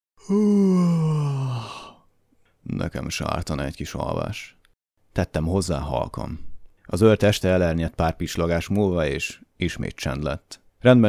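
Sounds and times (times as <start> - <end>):
person yawning: 0.2 - 2.0
speech: 0.3 - 0.7, 2.8 - 4.6, 5.2 - 11.0.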